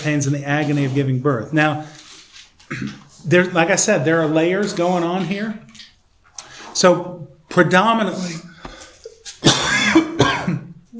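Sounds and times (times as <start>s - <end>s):
speech: 0.0s - 2.0s, 2.7s - 5.8s, 6.8s - 8.5s
throat clearing: 2.7s - 3.1s, 9.0s - 10.8s.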